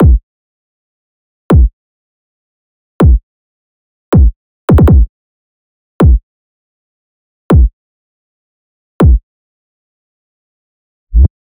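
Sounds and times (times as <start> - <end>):
kick drum loop: 0.0 - 0.2, 1.5 - 1.7, 3.0 - 3.2, 4.2 - 5.1, 6.0 - 6.2, 7.5 - 7.7, 9.0 - 9.2.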